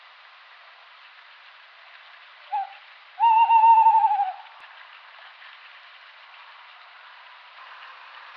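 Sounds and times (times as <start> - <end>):
Tawny owl Strix aluco hooting: 2.5 - 4.5.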